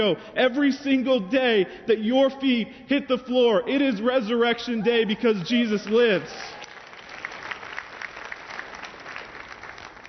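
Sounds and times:
speech: 0:00.0 - 0:06.6
crowd clapping: 0:05.4 - 0:10.0.

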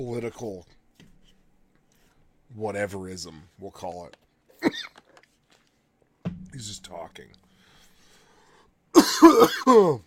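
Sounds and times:
speech: 0:00.0 - 0:00.8, 0:02.5 - 0:05.0, 0:06.6 - 0:07.4, 0:09.0 - 0:10.0
person coughing: 0:04.6 - 0:05.0, 0:09.0 - 0:10.0.

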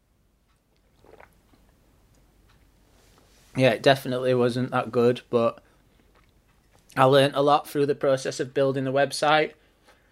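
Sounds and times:
person slurping while sipping coffee: 0:01.0 - 0:01.4
person swallowing: 0:01.0 - 0:01.7
speech: 0:03.6 - 0:05.6, 0:07.0 - 0:09.6.

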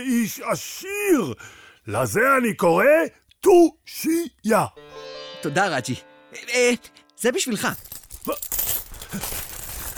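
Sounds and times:
speech: 0:00.0 - 0:09.4
gold coins jingling inside a sack: 0:07.6 - 0:09.9
cloth sack of gold coins rustling: 0:07.8 - 0:09.9.

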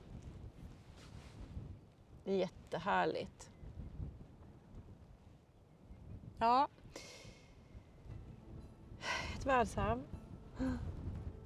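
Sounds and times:
gusty wind buffeting the microphone outdoors: 0:00.0 - 0:11.4
speech: 0:02.3 - 0:03.5, 0:06.4 - 0:07.1, 0:09.4 - 0:10.9.

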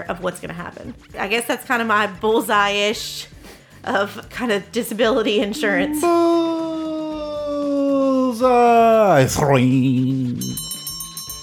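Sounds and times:
speech: 0:00.0 - 0:06.4, 0:08.4 - 0:10.6
brief sustained vocal sound: 0:05.3 - 0:10.6
closing bell rung rapidly: 0:10.4 - 0:11.4.

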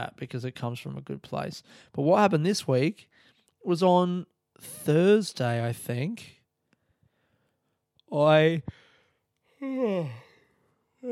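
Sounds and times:
speech: 0:00.0 - 0:06.4, 0:08.1 - 0:08.8, 0:09.6 - 0:10.2
person yawning: 0:09.6 - 0:11.0.

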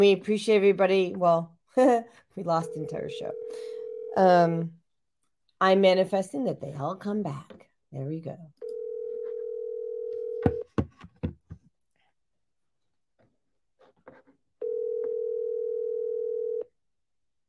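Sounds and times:
speech: 0:00.0 - 0:04.8, 0:05.6 - 0:08.6
ringback tone of an outgoing phone call: 0:02.6 - 0:04.2, 0:08.6 - 0:10.6, 0:14.6 - 0:16.7.

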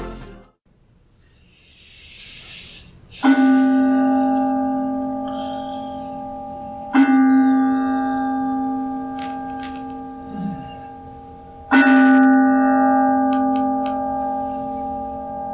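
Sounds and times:
mindfulness bell ringing: 0:03.3 - 0:15.5.

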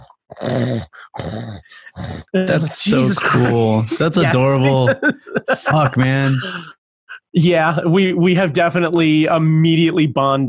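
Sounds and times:
person imitating snoring with a rough rattling vocal snore: 0:00.0 - 0:03.7
speech: 0:00.4 - 0:10.4
laughter: 0:02.5 - 0:06.8.

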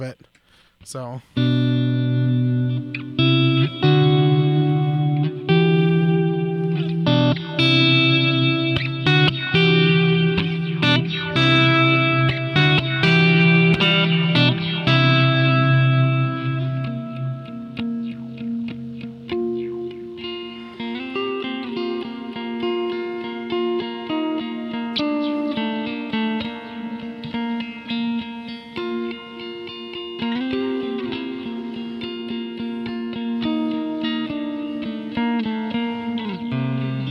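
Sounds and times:
speech: 0:00.0 - 0:02.0
electric guitar through a reverb delay and filter pedal playing chords: 0:01.4 - 0:37.0.

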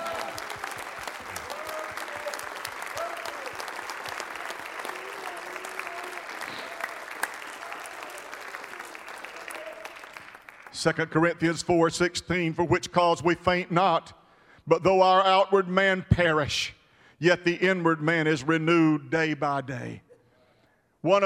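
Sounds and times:
audience clapping hands in praise: 0:00.0 - 0:10.8
speech: 0:10.8 - 0:20.0, 0:21.0 - 0:21.2.

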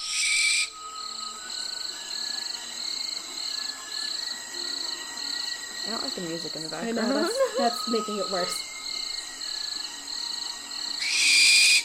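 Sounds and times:
barn owl screeching: 0:00.0 - 0:01.9, 0:07.6 - 0:11.8
speech: 0:05.9 - 0:08.7.

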